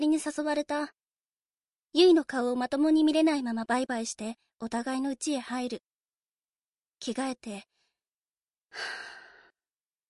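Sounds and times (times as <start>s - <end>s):
speech: 0.0s - 1.0s, 1.9s - 5.9s, 7.0s - 7.7s, 8.7s - 9.1s
big deep breath: 8.7s - 9.6s.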